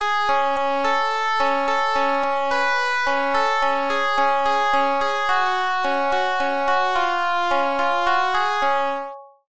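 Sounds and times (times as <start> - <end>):
organphone: 0.0 - 9.3.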